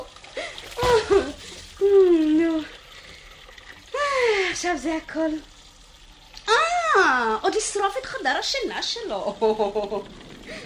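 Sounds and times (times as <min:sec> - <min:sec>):
water being poured out and splashing in a study: 0:00.0 - 0:10.6
speech: 0:04.6 - 0:05.6, 0:07.0 - 0:10.2.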